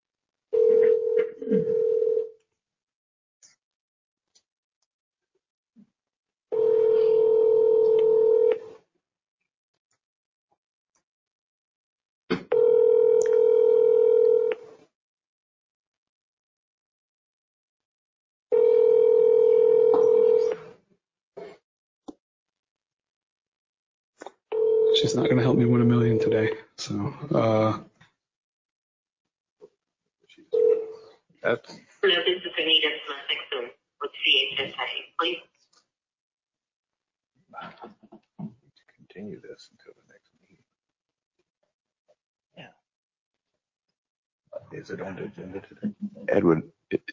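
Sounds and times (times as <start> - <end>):
telephone line tone: 0.6 - 2.3, 6.5 - 8.6, 12.5 - 14.6, 18.5 - 20.7, 24.5 - 26.5, 30.6 - 31.0
speech: 26.8 - 27.9, 31.4 - 35.5, 39.2 - 40.0, 44.6 - 47.1.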